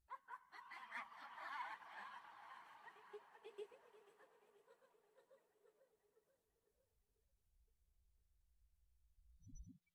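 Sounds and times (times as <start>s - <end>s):
horror laugh: 0.1s - 6.4s.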